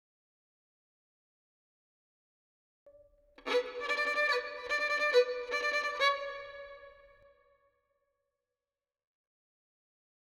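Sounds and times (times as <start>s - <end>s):
violin melody with reverb in B minor: 3.4s - 7.3s.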